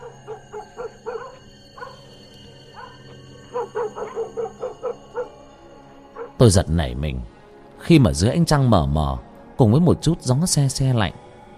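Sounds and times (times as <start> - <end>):
dog barking toward the gate in short yipping barks: 0.0 - 2.1, 2.7 - 5.4, 6.2 - 6.4
speech: 6.4 - 11.2.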